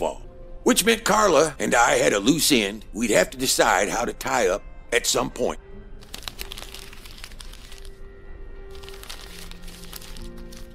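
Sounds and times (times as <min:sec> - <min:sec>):
speech: 0:00.0 - 0:05.6
paper crinkling and crackling: 0:06.0 - 0:08.0, 0:08.7 - 0:10.7.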